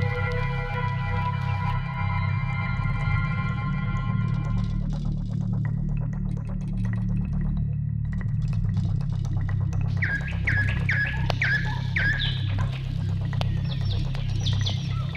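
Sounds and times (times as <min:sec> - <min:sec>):
steady low rumbling background: 0:00.0 - 0:15.1
nightingale singing in a forest at sunrise: 0:09.9 - 0:15.1.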